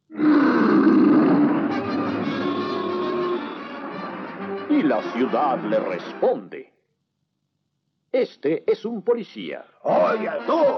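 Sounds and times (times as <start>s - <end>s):
lion roaring in an animated cartoon: 0.0s - 3.4s
speech: 4.8s - 6.7s, 8.1s - 10.7s.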